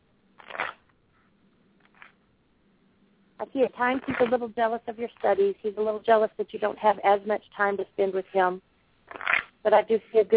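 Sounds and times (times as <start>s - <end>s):
deck of cards being shuffled in a papery riffle: 0.4s - 0.8s, 1.8s - 2.2s, 4.0s - 4.4s, 9.1s - 9.5s
softer flutter of cards: 0.4s - 2.2s
speech: 3.4s - 8.7s, 9.6s - 10.3s.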